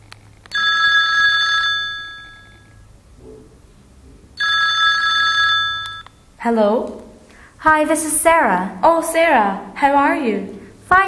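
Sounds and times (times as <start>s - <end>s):
telephone ringing on an outgoing call: 0.5s - 2.8s, 4.4s - 6.2s
speech: 6.4s - 7.0s, 7.6s - 11.0s.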